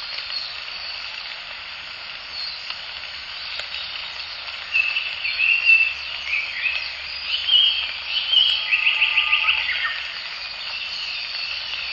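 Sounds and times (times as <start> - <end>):
Japanese paradise flycatcher song at the Morito River: 4.7 - 10.1.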